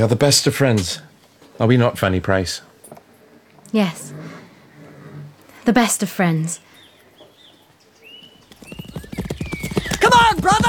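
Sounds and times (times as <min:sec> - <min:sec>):
speech: 0:00.0 - 0:02.7, 0:03.7 - 0:04.2, 0:05.6 - 0:06.7
horse hooves clip-clopping as a rider urges a horse on: 0:08.1 - 0:10.6.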